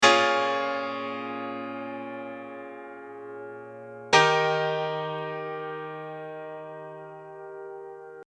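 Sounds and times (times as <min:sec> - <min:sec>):
bridge chords: 0:00.0 - 0:08.2.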